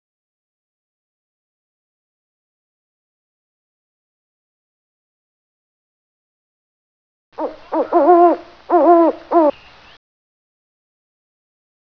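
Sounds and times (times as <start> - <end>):
owl hoots: 7.4 - 9.6.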